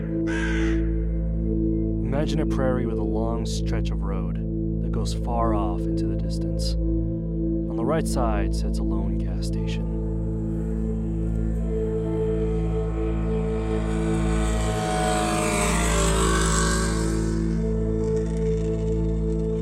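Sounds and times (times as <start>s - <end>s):
motorcycle engine droning while riding along a prairie road: 0.0s - 4.9s, 9.0s - 19.5s
speech: 2.2s - 6.9s, 7.8s - 10.0s.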